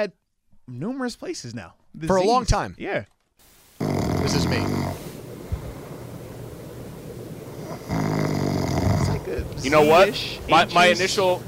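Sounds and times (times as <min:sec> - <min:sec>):
speech: 0:00.0 - 0:03.2, 0:04.2 - 0:05.0, 0:09.3 - 0:11.4
person imitating snoring with rattling breath: 0:03.8 - 0:05.0, 0:07.6 - 0:09.3.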